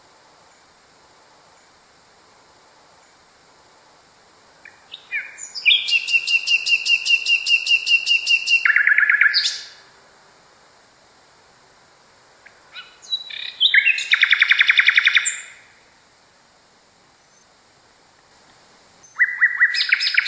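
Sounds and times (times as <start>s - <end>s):
Common nightingale song: 4.5s - 9.9s, 12.3s - 16.0s, 17.1s - 17.6s, 18.9s - 20.2s.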